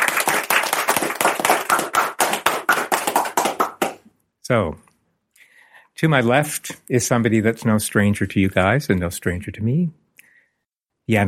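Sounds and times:
small audience applause: 0:00.0 - 0:04.0
speech: 0:04.5 - 0:04.8, 0:06.0 - 0:10.0, 0:11.1 - 0:11.2.

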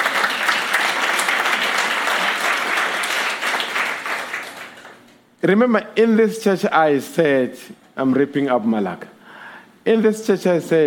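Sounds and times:
audience clapping: 0:00.0 - 0:05.2
speech: 0:05.4 - 0:09.2, 0:09.8 - 0:10.8.

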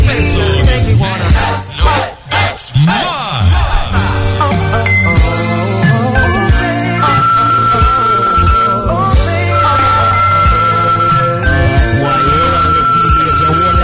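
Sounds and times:
music: 0:00.0 - 0:13.8
voices: 0:00.0 - 0:13.8
telephone ringing: 0:04.8 - 0:13.8.

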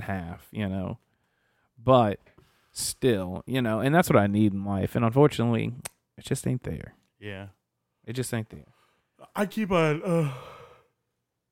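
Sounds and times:
speech: 0:00.1 - 0:01.1, 0:01.8 - 0:10.6
person yawning: 0:09.9 - 0:10.9.

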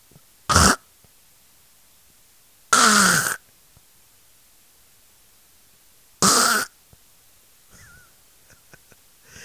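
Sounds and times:
person imitating a man's loud snoring: 0:02.8 - 0:03.4, 0:06.2 - 0:06.7.

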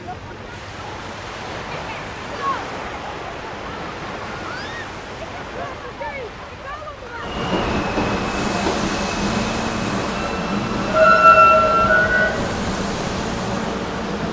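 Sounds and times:
subway express train rumbling along the tracks: 0:00.0 - 0:05.6, 0:07.1 - 0:14.3
metallic squealing of subway train: 0:07.2 - 0:14.3.

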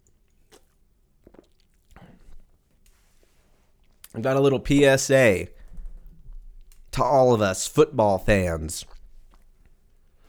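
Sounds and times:
person sipping a drink: 0:00.3 - 0:02.6
swallow: 0:00.5 - 0:02.6
speech: 0:04.2 - 0:05.6, 0:07.0 - 0:09.0.

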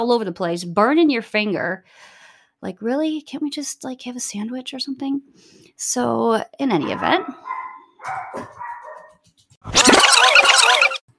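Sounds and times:
speech: 0:00.0 - 0:08.6, 0:09.6 - 0:11.0
dog in a house barking: 0:06.8 - 0:09.2.

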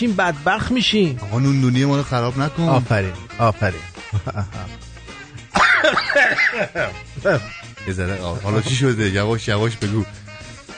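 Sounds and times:
speech: 0:00.0 - 0:04.9, 0:05.8 - 0:10.2
laughter: 0:04.0 - 0:04.8, 0:05.5 - 0:07.5
person coughing: 0:05.6 - 0:07.0.

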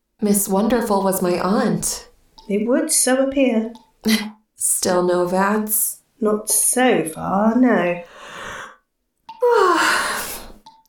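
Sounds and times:
speech: 0:00.2 - 0:08.4
person yawning: 0:09.4 - 0:10.6.

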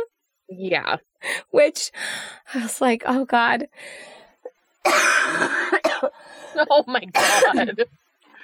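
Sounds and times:
speech: 0:00.5 - 0:04.2, 0:04.8 - 0:08.0
person coughing: 0:04.9 - 0:06.2, 0:07.1 - 0:07.7.

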